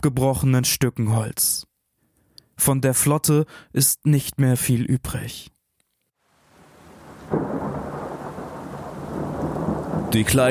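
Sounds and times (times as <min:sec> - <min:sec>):
speech: 0:00.0 - 0:01.7, 0:02.6 - 0:05.6, 0:10.1 - 0:10.4
steady hiss of falling rain: 0:06.2 - 0:10.4
deep rolling thunder as a hurricane passes: 0:06.8 - 0:10.4.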